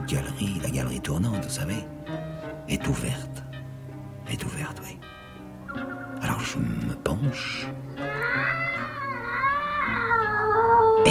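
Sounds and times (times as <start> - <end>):
speech: 0.1 - 3.4, 4.3 - 5.1, 6.3 - 8.6
cat meowing horribly near an open gallery window: 8.0 - 11.0.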